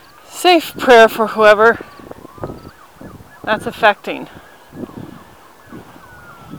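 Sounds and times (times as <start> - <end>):
emergency siren wailing in the street: 0.0 - 6.5
gusty wind noise: 0.0 - 6.5
low rumbling bursts: 0.0 - 6.5
speech: 0.4 - 2.1, 3.5 - 4.9.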